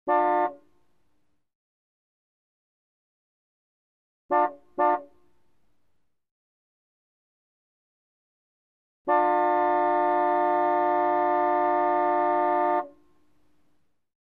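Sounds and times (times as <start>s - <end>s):
car horn: 0.0s - 0.7s, 4.3s - 5.3s, 9.1s - 13.0s.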